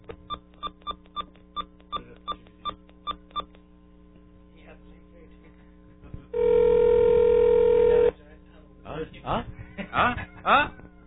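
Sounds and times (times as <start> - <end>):
loud steady phone ringing tone: 6.4 - 8.1.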